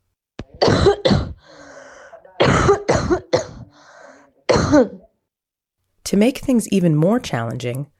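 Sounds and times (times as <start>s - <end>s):
asymptomatic COVID-19 patient coughing: 0.5s - 1.6s, 2.4s - 3.9s, 4.5s - 5.1s
short breathy inhale: 1.4s - 2.2s, 3.7s - 4.4s
speech: 4.7s - 5.1s, 6.1s - 7.9s.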